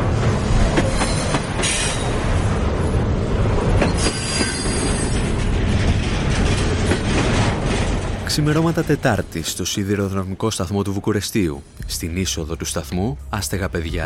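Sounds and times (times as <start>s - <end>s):
clickety-clack beats of train on rails: 0.0s - 9.6s
train rolling along the rails with continuous rumble: 0.0s - 14.0s
high metallic train wheel squeals: 3.8s - 5.5s
speech: 8.4s - 14.0s.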